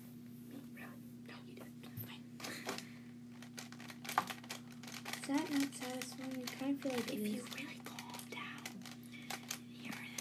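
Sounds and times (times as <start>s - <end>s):
faint steady hum: 0.0s - 10.1s
pencils or crayons rattling in a cup being handled: 2.4s - 10.1s
speech: 5.3s - 7.9s.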